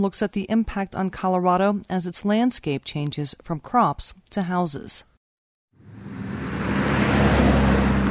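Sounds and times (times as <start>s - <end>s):
speech: 0.0s - 5.1s
highway traffic roar on I-25 north of Denver Colorado: 5.8s - 8.0s.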